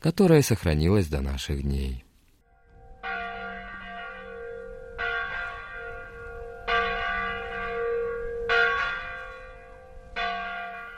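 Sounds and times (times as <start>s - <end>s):
speech: 0.0s - 2.0s
church bell tolling: 2.5s - 10.9s.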